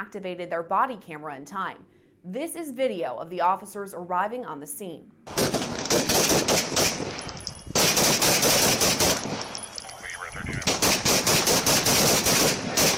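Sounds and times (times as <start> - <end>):
speech: 0.0 - 7.1
gunfire exchanged in a police shootout: 5.3 - 12.9.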